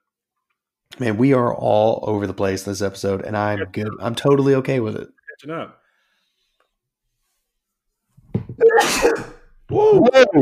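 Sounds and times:
speech: 1.0 - 5.8, 9.0 - 10.3
person sneezing: 8.6 - 9.4.

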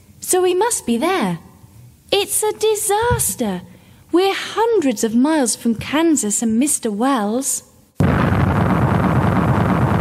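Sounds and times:
speech: 0.3 - 1.5, 2.2 - 7.7
distant explosion rumble: 8.0 - 10.0.

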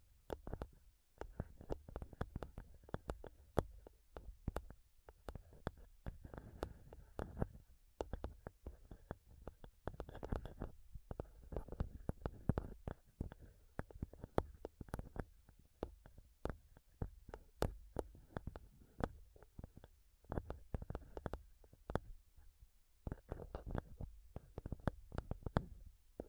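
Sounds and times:
fingernails tapping rapidly on a microphone: 0.3 - 22.2, 23.0 - 26.2.

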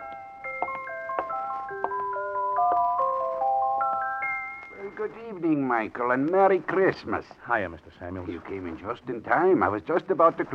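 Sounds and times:
music box playing a slow tinkling tune: 0.0 - 5.1
speech: 5.0 - 10.5.

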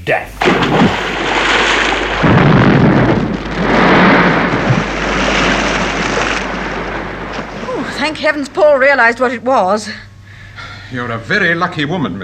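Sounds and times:
speech: 0.0 - 1.0, 8.0 - 10.1, 10.9 - 12.2
bomb explosion rumble: 0.4 - 9.4.

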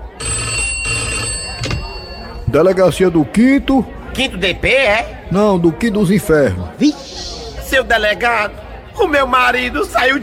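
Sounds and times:
telephone ringing in a steady electronic trill: 0.1 - 2.4
speech: 2.5 - 7.0, 7.7 - 10.2.

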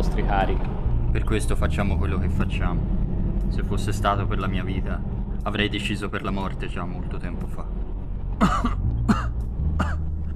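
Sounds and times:
speech: 0.2 - 7.7, 8.4 - 9.3
harsh hacking coughs in a strong coughing fit: 8.4 - 10.1.

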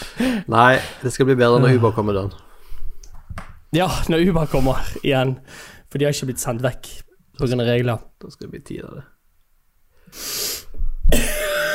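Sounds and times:
speech: 0.2 - 2.5, 3.7 - 9.1, 10.1 - 11.4
sharp intake of breath: 10.0 - 10.8
harsh forceful coughing: 11.1 - 11.7.

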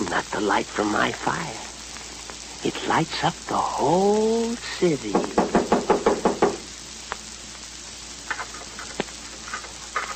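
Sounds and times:
speech: 0.1 - 1.7, 2.6 - 5.4
firm knocking on a door: 5.2 - 6.7.

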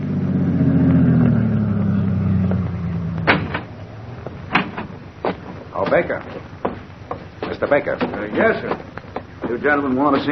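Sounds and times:
car engine humming as the vehicle drives up to a farm entrance: 0.0 - 10.2
sharp car door thuds as two men get out: 3.2 - 10.2
speech: 5.9 - 6.4, 7.6 - 10.2.

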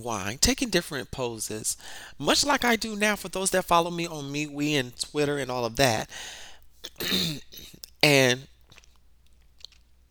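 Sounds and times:
speech: 0.0 - 8.5
voiced throat clearing: 6.9 - 7.8.

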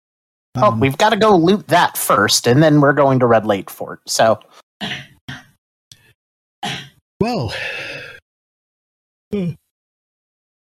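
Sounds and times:
speech: 0.6 - 5.1, 7.2 - 7.8, 9.3 - 9.6
person yawning: 7.2 - 8.2, 9.3 - 9.7.

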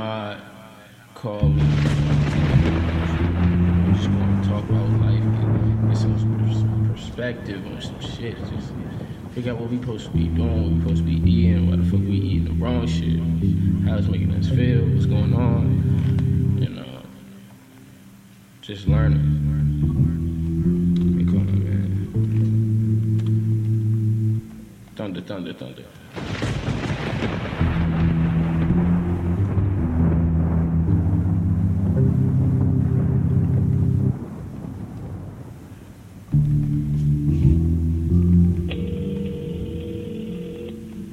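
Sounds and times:
speech: 1.2 - 1.9, 4.0 - 16.4, 18.7 - 19.7, 25.1 - 26.6
bass-heavy music track: 1.4 - 7.3, 10.1 - 16.8, 18.9 - 24.8, 27.6 - 34.2, 36.3 - 41.1
thunder crack and rumbling: 1.4 - 17.4, 26.1 - 41.1.

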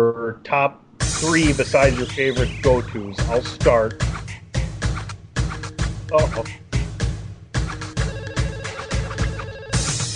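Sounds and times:
speech: 0.0 - 4.3, 6.1 - 6.6
tinny ringtone-style rendition of a pop tune: 1.0 - 4.1, 7.8 - 10.1
steady thumping beats: 1.0 - 10.1.

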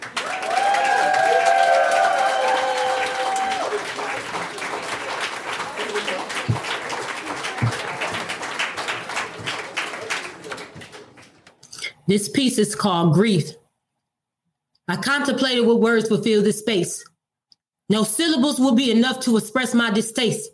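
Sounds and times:
high whoops and cheers from a crowd: 0.0 - 4.2
crowd clapping for a spoken word performer: 0.0 - 11.6
speech: 12.1 - 13.6, 14.9 - 17.1, 17.9 - 20.5.

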